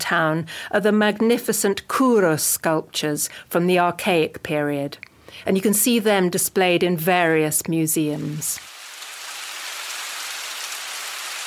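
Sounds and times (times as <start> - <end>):
speech: 0.0 - 8.7
steady rain falling outdoors: 8.2 - 11.4.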